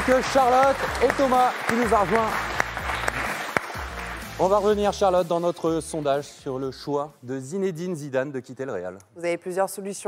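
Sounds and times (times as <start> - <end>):
speech: 0.0 - 2.6, 4.4 - 10.0
studio audience applause: 0.0 - 4.7.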